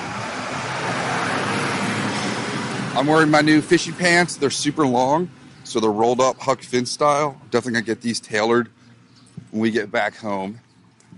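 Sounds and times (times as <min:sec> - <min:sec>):
bus engine and road noise driving past: 0:00.0 - 0:05.7
speech: 0:03.0 - 0:08.8, 0:09.5 - 0:10.6.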